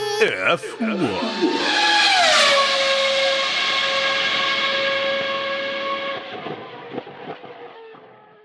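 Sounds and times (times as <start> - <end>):
laughter: 0.1 - 1.4
racing car engine in a homemade jingle: 1.2 - 7.2.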